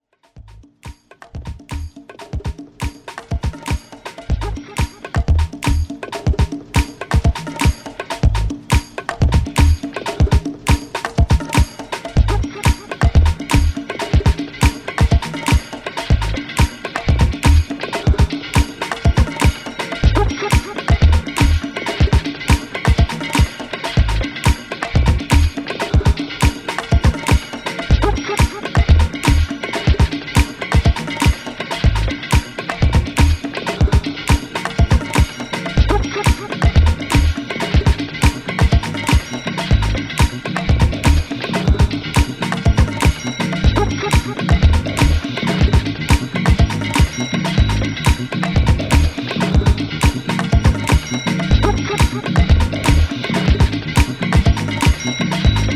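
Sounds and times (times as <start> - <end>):
drum sounds: 0.3 - 55.7.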